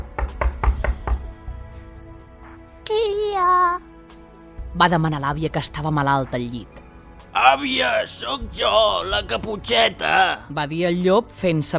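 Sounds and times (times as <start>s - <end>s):
knocking on the door of a house: 0.0s - 1.4s
speech: 4.8s - 6.8s, 7.4s - 11.7s.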